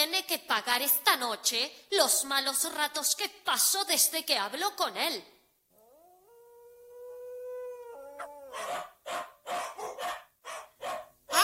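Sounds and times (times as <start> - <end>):
speech: 0.3 - 5.4
dog howling: 5.8 - 8.9
dog barking: 8.2 - 11.4.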